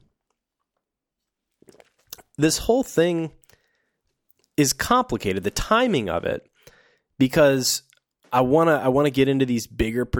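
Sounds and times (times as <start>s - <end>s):
person slurping and swallowing water: 1.6s - 2.4s
faint wet mouth clicks: 1.7s - 2.4s
speech: 2.4s - 3.4s, 4.6s - 6.5s, 7.2s - 10.1s.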